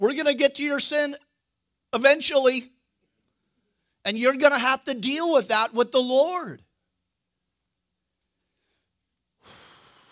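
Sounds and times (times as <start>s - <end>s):
speech: 0.0s - 1.3s, 1.9s - 2.8s, 4.0s - 6.6s
deep breath: 8.4s - 10.0s.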